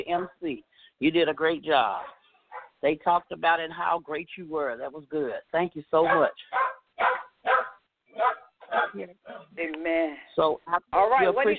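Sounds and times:
speech: 0.0 - 2.2, 2.8 - 7.6, 8.2 - 11.5
dog barking: 2.0 - 2.8, 6.0 - 9.5.

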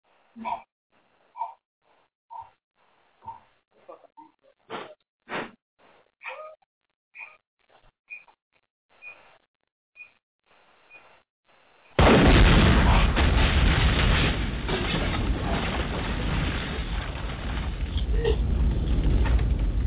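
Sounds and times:
heavy rumbling roar: 12.0 - 19.8
loud explosion: 12.0 - 19.8.

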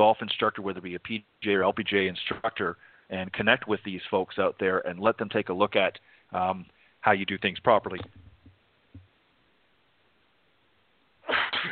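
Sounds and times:
speech: 0.0 - 8.2
person sneezing: 11.2 - 11.7.

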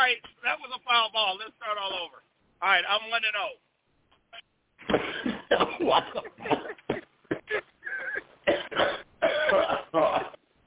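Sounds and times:
speech: 0.1 - 3.7, 4.3 - 6.8
coughing fit with harsh coughs: 4.8 - 10.6
throat-clearing bursts: 6.5 - 10.4.

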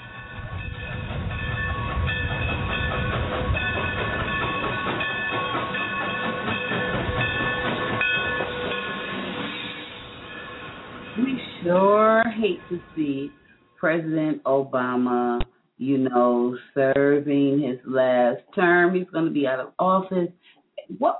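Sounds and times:
rhythmic clacking of train wheels: 0.0 - 12.3
train rolling along railway tracks: 0.0 - 13.5
sustained high metallic tone: 0.0 - 14.4
speech: 12.4 - 21.1.

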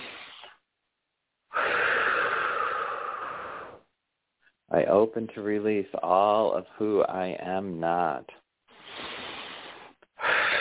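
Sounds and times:
deep breaths in through the nose and released during a grounding exercise: 0.0 - 0.6, 1.5 - 3.9, 8.7 - 10.5
speech: 4.7 - 8.4.

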